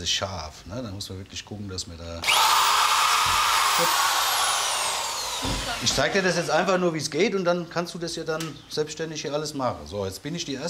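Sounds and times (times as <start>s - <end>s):
speech: 0.0s - 4.1s, 5.4s - 10.6s
small electric drill boring into a carrot: 2.2s - 6.7s.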